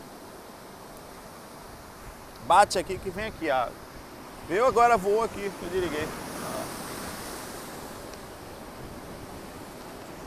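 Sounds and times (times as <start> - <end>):
faint wind-like hiss: 0.0 - 10.2
ocean surf roar: 0.0 - 10.2
speech: 2.5 - 3.9, 4.5 - 6.2.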